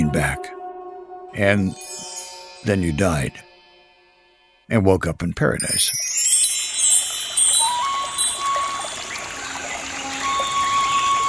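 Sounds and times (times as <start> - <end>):
speech: 1.4 - 1.8, 2.6 - 3.5, 4.7 - 6.2
gentle stream water flowing: 6.0 - 11.2.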